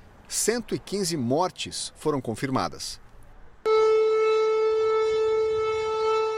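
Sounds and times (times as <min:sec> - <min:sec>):
speech: 0:00.3 - 0:03.0
civil defense warning siren blaring during a nationwide siren test in Russia: 0:03.7 - 0:06.3.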